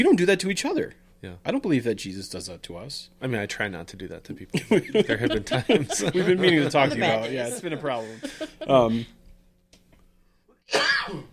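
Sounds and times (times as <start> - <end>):
speech: 0.0 - 9.2, 10.7 - 11.3
faint low hum: 0.0 - 11.3
laughter: 4.5 - 9.0
person coughing: 10.7 - 11.3.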